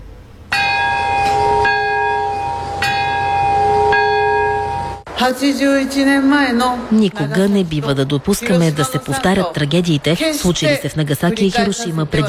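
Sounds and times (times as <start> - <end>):
large peace bell tolling at a memorial ceremony: 0.5 - 5.1
speech: 5.2 - 12.2.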